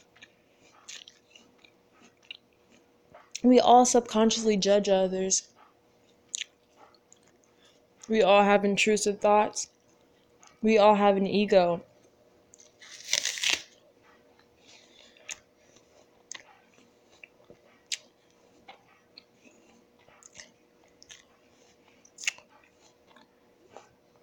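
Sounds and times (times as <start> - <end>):
crunchy bites and chewing of an apple: 0.0 - 3.4, 12.6 - 13.8, 15.2 - 24.0
speech: 3.4 - 5.5, 8.1 - 9.8, 10.6 - 11.9.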